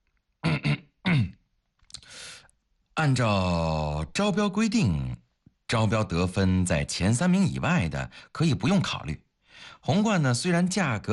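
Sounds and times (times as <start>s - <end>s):
man clearing his throat: 0.4s - 1.4s
soft breathy exhale: 2.0s - 2.5s
speech: 3.0s - 11.1s.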